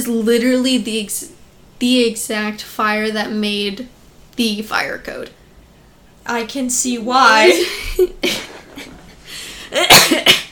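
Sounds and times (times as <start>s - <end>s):
speech: 0.0s - 5.4s, 6.3s - 8.5s, 9.7s - 10.4s
person coughing: 9.7s - 10.4s.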